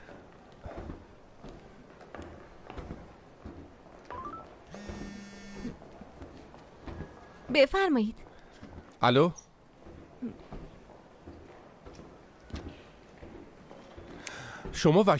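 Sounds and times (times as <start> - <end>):
telephone dialing key beeps: 4.1 - 5.0
telephone buzzing tone: 4.1 - 5.8
speech: 7.6 - 8.2, 9.0 - 9.4, 14.8 - 15.1.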